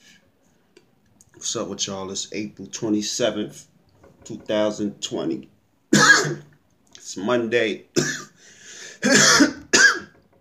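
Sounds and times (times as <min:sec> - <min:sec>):
speech: 0:01.4 - 0:03.7, 0:04.3 - 0:05.5, 0:06.2 - 0:06.5, 0:07.1 - 0:08.3
smoker's cough from marijuana: 0:05.9 - 0:06.5, 0:08.0 - 0:08.4, 0:09.0 - 0:10.2
faint raspy breath: 0:08.4 - 0:09.0.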